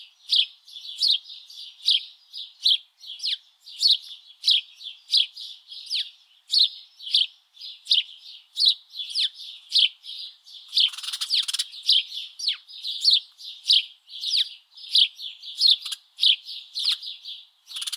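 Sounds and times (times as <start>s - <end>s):
Passer domesticus chirping: 0.0s - 17.9s.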